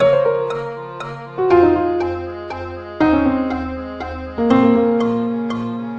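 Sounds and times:
metronome ticking: 0.0s - 5.9s
piano accordion melody: 0.0s - 5.9s.

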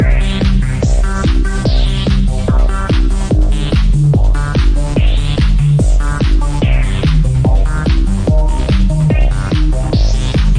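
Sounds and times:
145 bpm cheeseball trance loop: 0.0s - 10.5s.

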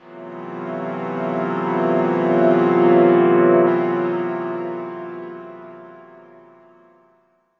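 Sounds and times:
reversed piano-like synth pad: 0.0s - 4.8s.

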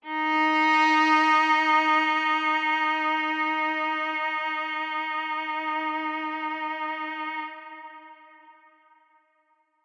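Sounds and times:
solo cello with reverb playing D sharp 3: 0.0s - 9.1s.

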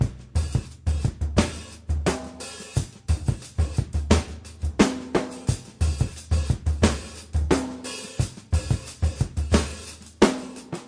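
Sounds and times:
drum loops and breaks: 0.0s - 10.8s.

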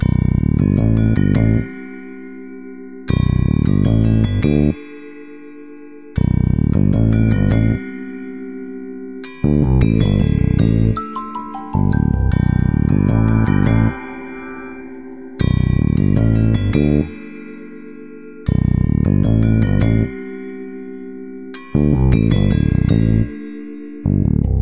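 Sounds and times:
gamelan bass groove: 0.0s - 1.8s, 3.2s - 4.8s, 6.2s - 7.9s, 9.4s - 17.5s, 18.5s - 20.4s, 21.6s - 23.4s, 24.1s - 24.5s.

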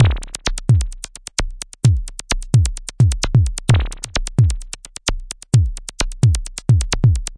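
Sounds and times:
analog drum loops and breaks: 0.0s - 7.3s.

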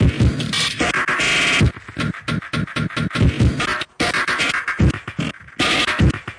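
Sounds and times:
glitchy drum loops and breaks: 0.0s - 6.3s.

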